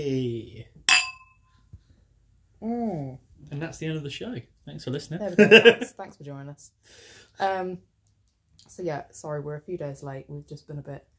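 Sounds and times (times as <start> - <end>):
speech: 0.0 - 0.8, 2.6 - 7.9, 8.7 - 11.1
glasses clinking in a celebratory toast: 0.9 - 1.5
laughter: 5.3 - 5.9.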